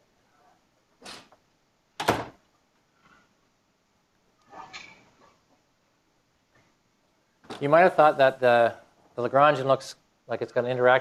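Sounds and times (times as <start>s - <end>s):
door closing with a thud: 2.0s - 2.4s
speech: 7.6s - 10.9s.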